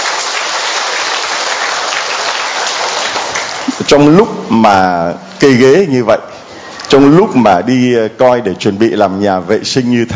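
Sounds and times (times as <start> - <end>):
audience applause: 0.0 - 4.1
speech: 3.9 - 6.3, 6.9 - 10.1.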